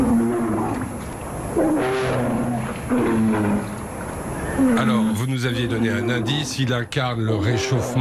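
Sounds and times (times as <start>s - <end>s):
polar bear growling: 0.0s - 3.8s, 4.4s - 6.5s
speech: 5.4s - 7.9s.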